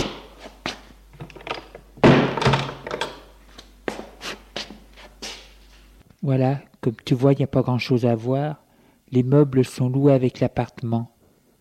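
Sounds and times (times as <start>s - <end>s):
shuffling footsteps with light taps: 0.0s - 1.2s, 3.4s - 6.1s
door shutting with a solid thunk: 1.2s - 3.2s
speech: 6.2s - 11.1s.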